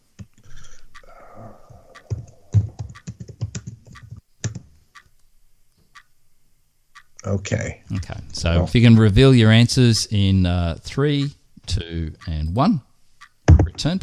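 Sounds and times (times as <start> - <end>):
typing on a computer keyboard: 2.0 - 4.7
speech: 7.2 - 12.9, 13.8 - 14.0.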